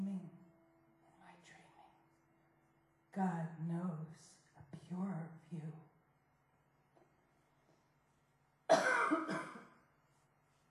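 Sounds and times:
speech: 0:03.1 - 0:05.9
harsh throaty cough: 0:08.7 - 0:09.8.

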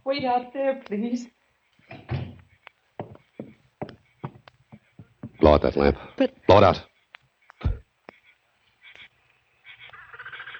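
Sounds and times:
speech: 0:00.1 - 0:02.1, 0:05.5 - 0:06.9
door pushed shut with a heavy thud: 0:01.9 - 0:02.4.

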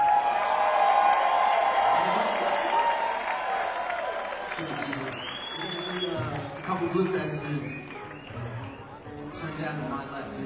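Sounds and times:
crowd in Las Vegas clapping: 0:00.0 - 0:09.3.

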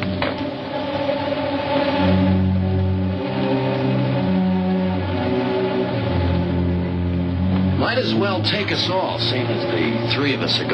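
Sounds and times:
car engine revving and driving off: 0:00.0 - 0:10.7
speech: 0:08.0 - 0:10.7.

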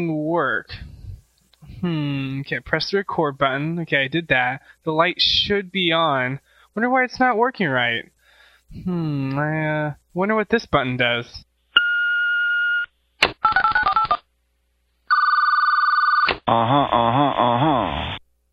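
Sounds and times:
speech: 0:00.0 - 0:00.9, 0:01.7 - 0:11.5, 0:16.5 - 0:18.2
electronic telephone ringing and beeping tones: 0:12.5 - 0:14.2, 0:15.1 - 0:16.3.

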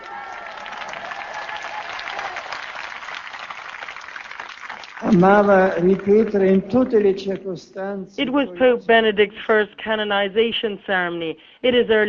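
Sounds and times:
large crowd of pilgrims applauding: 0:00.0 - 0:07.1
speech: 0:05.1 - 0:12.0.

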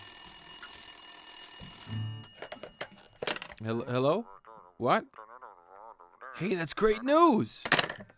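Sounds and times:
telephone ringing with electronic bell tone: 0:00.0 - 0:04.3
speech: 0:03.6 - 0:05.2, 0:06.4 - 0:07.8.

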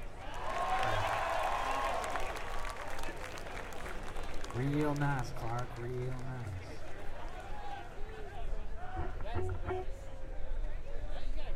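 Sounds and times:
audience applause: 0:00.0 - 0:07.9
faint crowd voices: 0:02.6 - 0:11.5
speech: 0:04.6 - 0:06.7.

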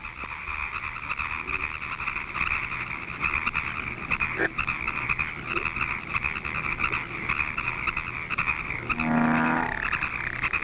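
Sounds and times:
bullfrog croaking: 0:00.0 - 0:10.6
chorus of frogs trilling and chirping: 0:00.0 - 0:10.6.

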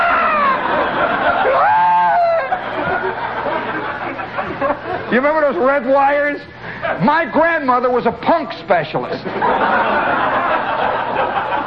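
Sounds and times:
person imitating the wailing scream of a child who grabbed a hot wire: 0:00.0 - 0:00.7, 0:01.5 - 0:02.5
laughter: 0:00.0 - 0:07.3, 0:09.0 - 0:11.6
speech: 0:05.2 - 0:11.6.

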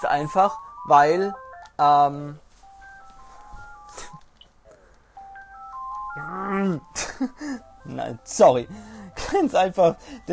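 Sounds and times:
speech: 0:00.0 - 0:02.4, 0:06.2 - 0:10.3
mobile phone melodic ringtone for an incoming call: 0:00.2 - 0:01.8, 0:02.6 - 0:04.2, 0:05.2 - 0:09.2.

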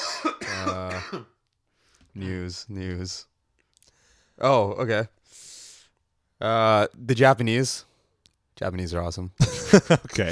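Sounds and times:
harsh throat-clearing cough: 0:00.0 - 0:01.4
speech: 0:02.2 - 0:03.3, 0:04.4 - 0:05.6, 0:06.4 - 0:07.9, 0:08.6 - 0:10.3.

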